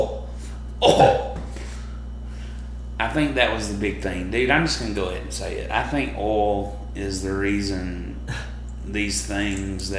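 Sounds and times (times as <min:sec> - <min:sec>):
hum: 0:00.0 - 0:09.9
speech: 0:00.8 - 0:01.2, 0:03.0 - 0:09.9
single rough throat clearing close to the microphone: 0:00.8 - 0:01.5.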